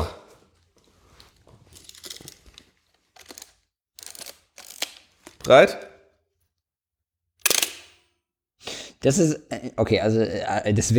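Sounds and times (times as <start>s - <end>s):
camera whirring ratcheting bursts: 4.0s - 5.0s, 7.4s - 7.9s
speech: 5.5s - 5.9s, 9.0s - 10.9s
camera shutter release clicking: 7.4s - 8.0s.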